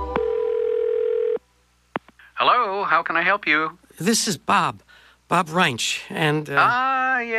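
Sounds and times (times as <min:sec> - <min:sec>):
landline telephone dial tone in a master bedroom: 0:00.2 - 0:01.4
speech: 0:02.8 - 0:07.3.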